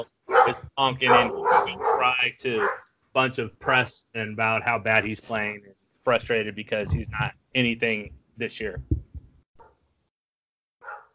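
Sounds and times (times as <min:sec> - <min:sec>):
speech: 0:00.0 - 0:08.9
very worked-up dog barking: 0:00.3 - 0:02.9, 0:10.8 - 0:11.1.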